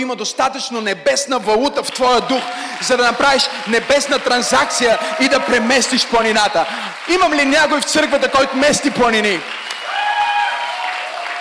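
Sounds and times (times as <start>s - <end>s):
speech: 0.0s - 9.6s
congregation clapping: 1.6s - 11.3s
people cheering and whooping: 2.2s - 7.4s, 9.0s - 11.3s.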